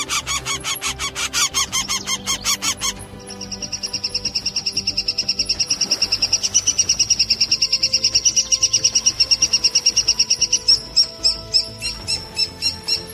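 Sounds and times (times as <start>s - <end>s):
three-toed woodpecker calling in rapid squeaky notes: 0.0s - 13.1s.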